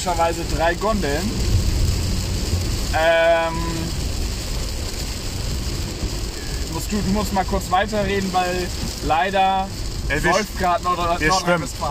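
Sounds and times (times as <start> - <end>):
speech: 0.0 - 1.4, 2.9 - 3.8, 6.8 - 11.9
heavy rain pouring down: 0.0 - 11.9.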